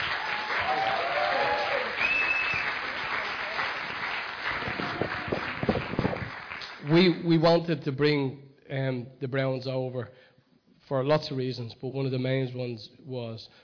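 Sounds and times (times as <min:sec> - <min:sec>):
whoops and cheers: 0:00.0 - 0:06.0
church audience applauding: 0:00.0 - 0:07.0
speech: 0:06.9 - 0:10.2, 0:10.9 - 0:13.6.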